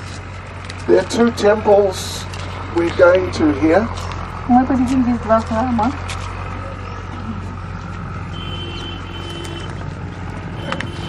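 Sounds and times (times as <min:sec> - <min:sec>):
continuous broadband road noise: 0:00.0 - 0:11.0
vehicles moving through a village in Paita: 0:00.0 - 0:11.0
speech: 0:00.9 - 0:06.2.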